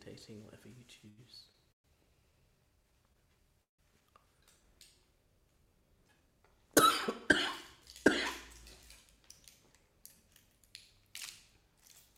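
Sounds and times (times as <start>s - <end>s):
speech: 0.2s - 1.6s
person coughing: 6.8s - 8.6s.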